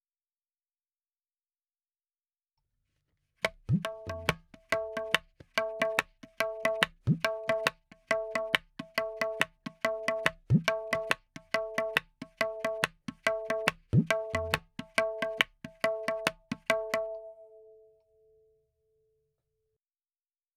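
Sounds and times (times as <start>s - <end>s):
tabla: 3.4s - 17.9s.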